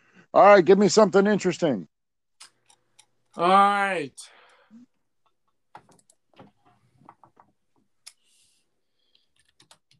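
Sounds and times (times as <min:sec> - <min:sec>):
speech: 0:00.3 - 0:01.9, 0:03.4 - 0:04.9
typing on a computer keyboard: 0:09.1 - 0:09.9.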